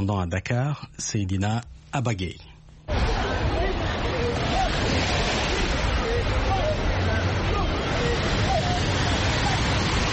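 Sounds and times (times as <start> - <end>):
speech: 0.0 - 2.5
crowd doing water aerobics in the sea chattering and calling out: 2.9 - 10.1
steady rushing surf at Angor beach in Dakar Senegal: 2.9 - 10.1.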